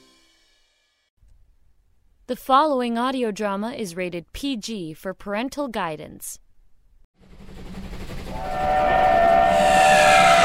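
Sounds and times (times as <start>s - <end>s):
speech: 2.3s - 6.4s
passenger train rumbling along rails: 7.2s - 10.4s
train whistle: 8.2s - 10.4s.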